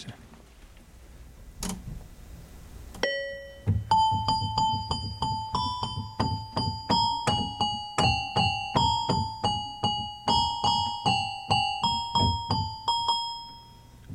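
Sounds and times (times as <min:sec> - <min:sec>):
bright plinking toy piano or electronic keyboard melody: 0:03.0 - 0:14.1.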